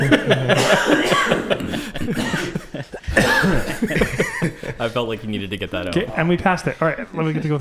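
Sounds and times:
speech: 0:00.0 - 0:04.0, 0:04.8 - 0:07.6
chuckling: 0:00.0 - 0:05.0
person coughing in rough throaty bursts: 0:00.5 - 0:04.5.

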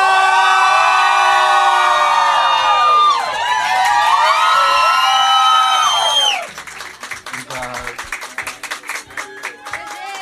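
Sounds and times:
large audience screaming and cheering as a singer comes on stage: 0:00.0 - 0:06.6
dense applause and scattered clapping: 0:00.0 - 0:10.2.

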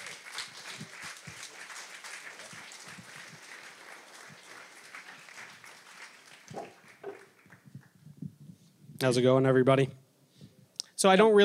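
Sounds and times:
crowd applauding: 0:00.0 - 0:08.0
speech: 0:09.0 - 0:10.0, 0:11.0 - 0:11.4.

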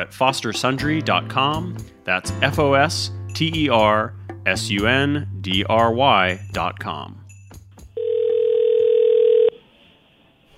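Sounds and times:
speech: 0:00.0 - 0:07.2
telephone dial tone while dialing out a call: 0:08.0 - 0:09.6.

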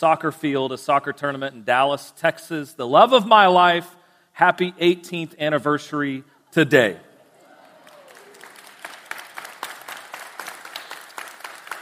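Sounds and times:
speech: 0:00.0 - 0:07.1
large audience applauding: 0:07.4 - 0:11.7.

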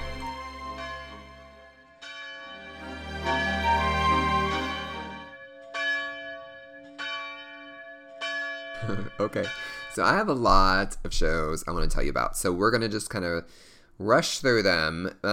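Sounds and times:
church bells pealing: 0:00.0 - 0:10.5
speech: 0:08.9 - 0:15.3.

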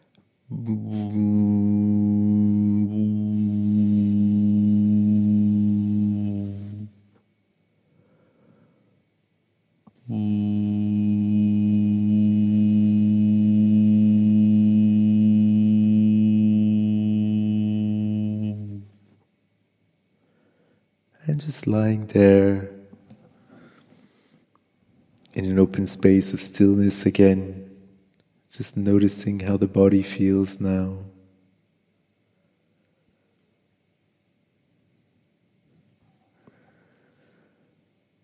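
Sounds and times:
person humming a low steady tone: 0:00.0 - 0:07.0, 0:09.9 - 0:19.0
speech: 0:00.6 - 0:01.4, 0:21.7 - 0:22.6, 0:25.8 - 0:27.7, 0:28.6 - 0:31.2.

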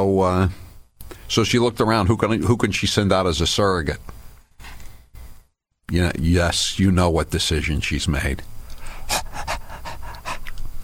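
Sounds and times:
speech: 0:00.0 - 0:00.6, 0:01.3 - 0:04.1, 0:05.9 - 0:09.3
dog panting: 0:08.9 - 0:10.8.

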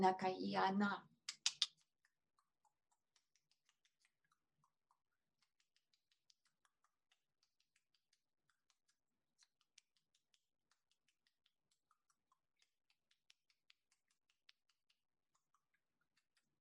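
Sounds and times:
speech: 0:00.0 - 0:01.1
mantis making dry clicks: 0:01.2 - 0:16.6.

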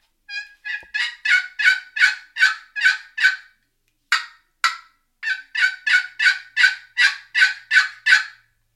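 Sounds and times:
wooden box call yelping like a turkey for turkey hunting: 0:00.3 - 0:08.4.

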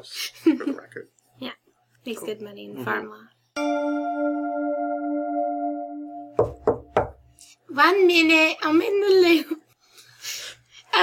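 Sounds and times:
speech: 0:00.0 - 0:04.8, 0:07.7 - 0:09.6
steady ringing chime: 0:03.6 - 0:06.4
firm knocks on a door: 0:06.4 - 0:07.2.

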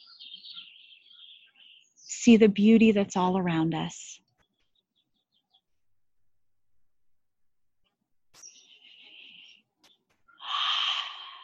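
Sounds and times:
speech: 0:02.2 - 0:04.2
person breathing deeply outdoors: 0:10.4 - 0:11.4.

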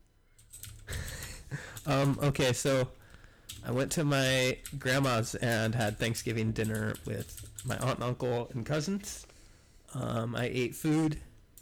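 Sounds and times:
typing on a computer keyboard: 0:00.4 - 0:02.4, 0:03.2 - 0:08.0
speech: 0:01.8 - 0:03.0, 0:03.6 - 0:09.3, 0:09.9 - 0:11.3.

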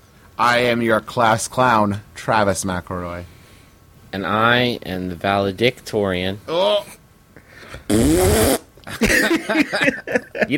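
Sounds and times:
speech: 0:00.4 - 0:03.4, 0:04.1 - 0:07.0, 0:07.7 - 0:10.5
loud buzzing fart sound with wobbling pitch: 0:07.9 - 0:08.8
laughter: 0:08.8 - 0:10.5.

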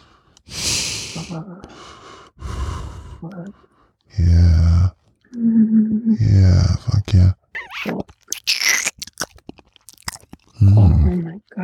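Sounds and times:
heavy breaths huffed through the nostrils with nose pressed against something: 0:00.0 - 0:05.1
speech: 0:01.2 - 0:02.0, 0:03.2 - 0:07.4.

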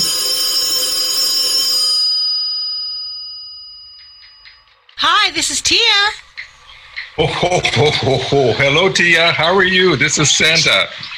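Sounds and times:
telephone ringing with a bright metallic bell tone: 0:00.0 - 0:04.8
speech: 0:05.3 - 0:06.3, 0:07.2 - 0:11.1
laughter: 0:07.2 - 0:09.1.

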